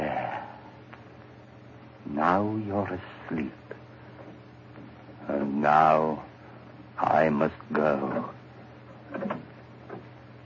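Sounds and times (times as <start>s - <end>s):
low steady hum: 0.0s - 10.4s
speech: 2.1s - 3.7s, 5.3s - 6.3s, 7.0s - 8.4s
door creaking open quietly: 8.9s - 10.1s.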